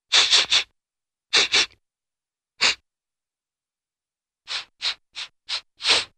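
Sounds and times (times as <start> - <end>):
various cartoon sniffing: 0.1 - 0.7, 1.3 - 1.8, 2.6 - 2.8, 4.5 - 6.1.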